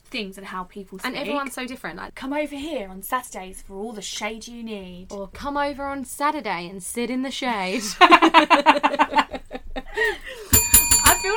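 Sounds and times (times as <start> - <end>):
speech: 0.1 - 11.3
laughter: 7.7 - 10.5
bicycle bell ringing: 10.5 - 11.3.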